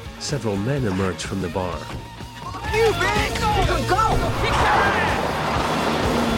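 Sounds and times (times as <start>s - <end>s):
speech: 0.3s - 2.2s, 2.7s - 5.0s
car driving off quickly: 4.6s - 6.3s.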